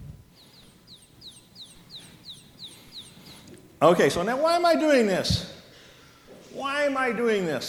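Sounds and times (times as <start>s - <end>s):
baby chick peeping: 0.4s - 3.8s
speech: 3.8s - 5.6s, 6.8s - 7.6s.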